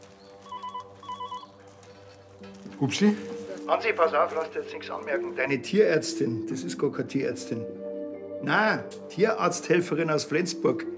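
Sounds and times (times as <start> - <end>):
telephone with trilling electronic ring: 0.4 - 1.6
speech: 2.6 - 7.8, 8.4 - 10.9.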